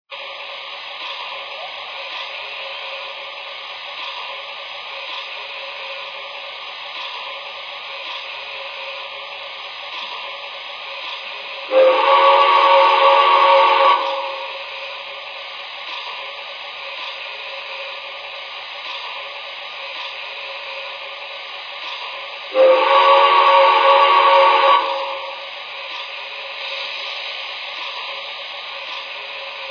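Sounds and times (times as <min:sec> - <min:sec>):
trains: 0:00.1 - 0:29.6.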